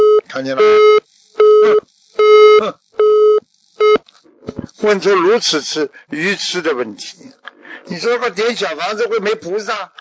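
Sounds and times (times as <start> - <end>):
telephone busy tone after a call is cut off: 0.0 - 4.0
speech: 0.4 - 1.0, 4.8 - 7.3, 7.9 - 10.0.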